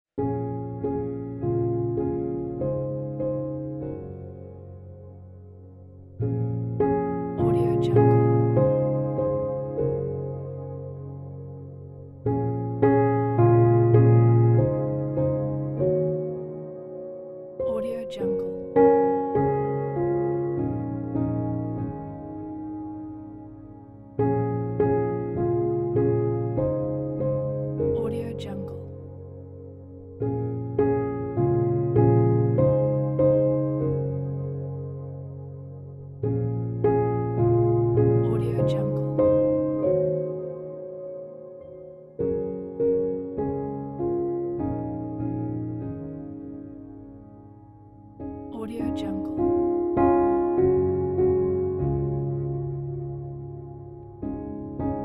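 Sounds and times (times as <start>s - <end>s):
soft ambient reflective piano: 0.2s - 55.0s.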